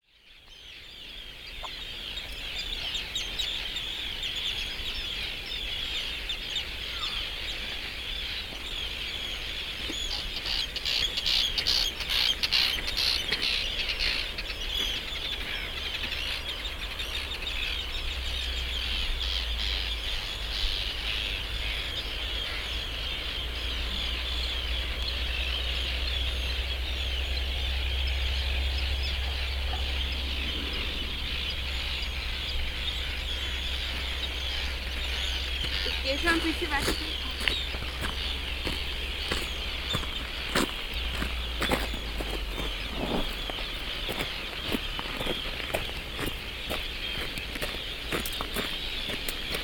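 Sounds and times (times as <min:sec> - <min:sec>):
birds on the shore at Arnarstapi: 0:00.0 - 0:49.6.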